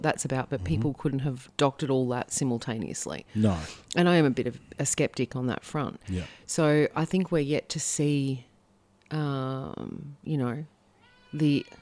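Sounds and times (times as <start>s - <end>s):
speech: 0.0s - 8.5s, 9.1s - 11.8s
22-year-old elderly pet cat meowing: 11.0s - 11.8s.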